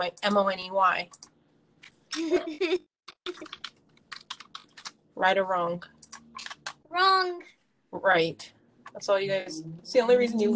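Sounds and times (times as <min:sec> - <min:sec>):
speech: 0:00.0 - 0:01.3, 0:02.2 - 0:03.7, 0:05.2 - 0:10.5
typing on a computer keyboard: 0:03.2 - 0:04.9.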